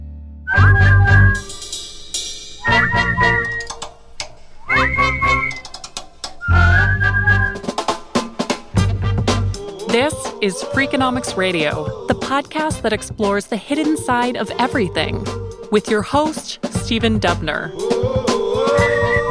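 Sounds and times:
punchy bass-heavy backing music: 0.0 - 3.9, 6.4 - 19.2
people whistling a tune together: 0.5 - 1.6, 2.6 - 3.8, 4.6 - 5.7, 6.4 - 7.9, 18.3 - 19.2
speech: 10.4 - 19.0.

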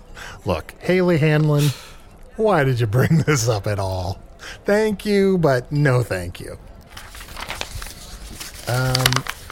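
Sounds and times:
speech: 0.4 - 6.7, 8.7 - 9.4
sheet of paper crumpled to be thrown away: 6.9 - 9.5.

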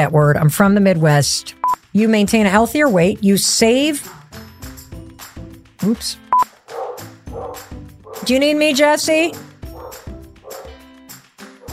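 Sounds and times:
speech: 0.0 - 4.4, 5.8 - 6.2, 8.2 - 9.5
dog barking in an excited yappy tone: 6.7 - 8.4, 9.7 - 10.8, 11.6 - 11.7.

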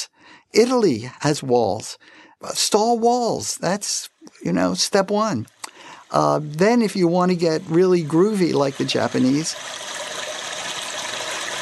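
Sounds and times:
speech: 0.5 - 9.9
device in a Japanese restroom mimicking a continuously flushing toilet: 4.4 - 11.5.

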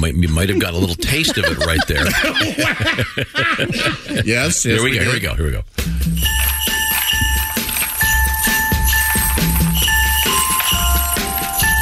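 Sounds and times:
speech: 0.0 - 6.4
laughter: 0.4 - 4.5
loud upbeat festive music intro with beat and bass: 5.3 - 11.8
bright ringing bells: 6.0 - 11.8.

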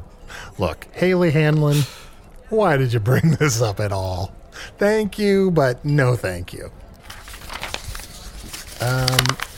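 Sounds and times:
speech: 0.6 - 6.8, 8.8 - 9.5
sheet of paper being crumpled up to be thrown away: 7.0 - 9.5.

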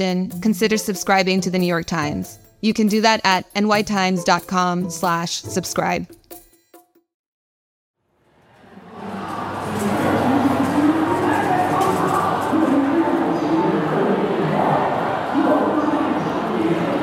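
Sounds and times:
speech: 0.0 - 6.2
dense crowd murmuring in Hong Kong airport arrivals hall: 8.5 - 17.0.

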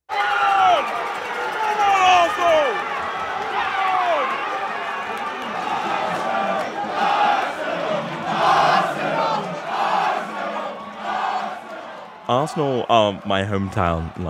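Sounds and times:
soccer fans shouting and cheering in a crowded bar: 0.0 - 14.2
soccer fans chanting in a crowded bar: 1.8 - 14.2
speech: 12.3 - 14.2.

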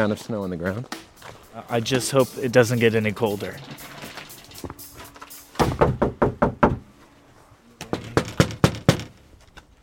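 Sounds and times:
speech: 0.0 - 4.0
heavy knocking on a front door: 5.6 - 6.8, 7.9 - 9.1.

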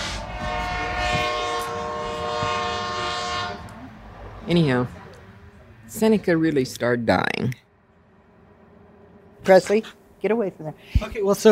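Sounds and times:
train horn blast: 0.0 - 3.8
passing train rumbling and rattling: 0.0 - 11.5
speech: 4.5 - 5.0, 5.9 - 7.6, 9.5 - 11.5.

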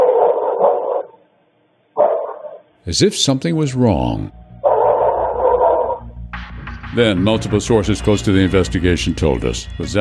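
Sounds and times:
dog barking: 0.0 - 1.2, 2.0 - 2.7, 4.7 - 6.0
speech: 2.8 - 4.4, 6.9 - 9.9.

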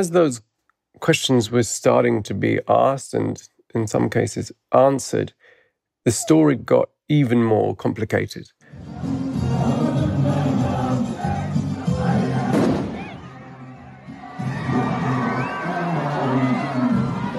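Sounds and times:
speech: 0.0 - 5.4, 6.0 - 8.6
large funeral crowd murmuring and calling out in Lebanon: 8.9 - 17.3
sharp bang and loud boom from an explosion: 12.5 - 13.2.

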